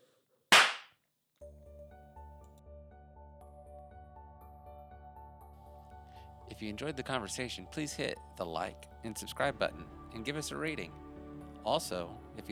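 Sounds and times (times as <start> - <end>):
slap to the face: 0.5 - 0.9
speech: 6.5 - 11.0, 11.6 - 12.4.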